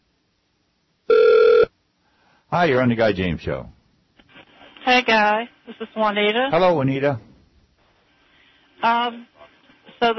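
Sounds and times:
electronic telephone ring: 1.1 - 1.7
speech: 2.5 - 3.8, 4.9 - 7.3, 8.8 - 9.3, 10.0 - 10.1.

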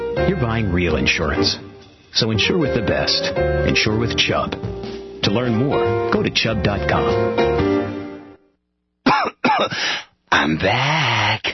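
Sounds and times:
speech: 0.2 - 7.6, 9.6 - 11.5
person coughing with a throaty rasp: 9.0 - 10.0.

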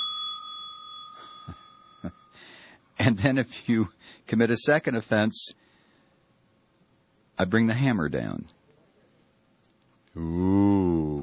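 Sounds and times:
small warning bell ringing: 0.0 - 3.0
speech: 3.0 - 5.6, 7.4 - 8.6, 10.2 - 11.2.

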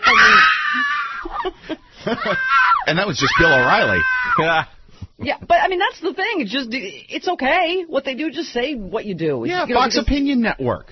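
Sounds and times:
voice imitating shrill screaming and wailing: 0.0 - 1.2, 2.2 - 4.6
speech: 2.0 - 10.9.

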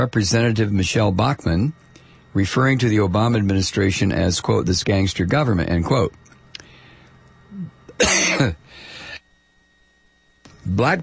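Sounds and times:
speech: 0.0 - 6.2, 7.6 - 8.9, 10.6 - 11.0
faint throaty sound: 6.5 - 9.3
loud cough: 7.6 - 8.6.

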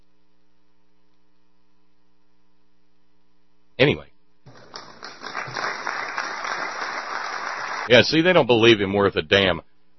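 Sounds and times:
speech: 3.8 - 4.1, 7.9 - 9.7
faint scattered applause from a small audience: 4.5 - 7.9.

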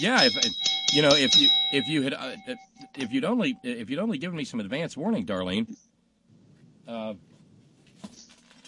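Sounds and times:
spare road cowbell ringing: 0.0 - 3.8
speech: 0.0 - 5.9, 6.9 - 7.3.

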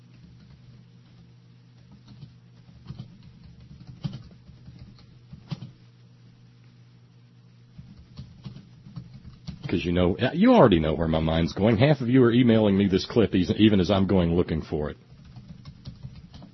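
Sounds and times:
typing on a keyboard: 0.1 - 1.2, 1.8 - 5.8, 7.8 - 9.7, 15.1 - 16.5
speech: 9.7 - 15.1.

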